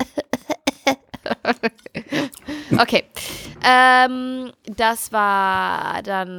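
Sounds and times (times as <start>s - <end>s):
laughter: 0.0s - 2.8s
short voiced coughs ending in a hoarse cough: 0.0s - 3.1s
speech: 0.9s - 6.3s.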